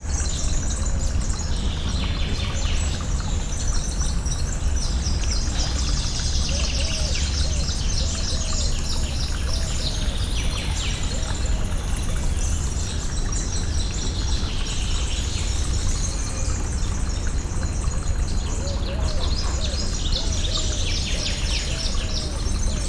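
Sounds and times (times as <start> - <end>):
lakeside ambience at a zoo in Szeged: 0.0 - 22.8.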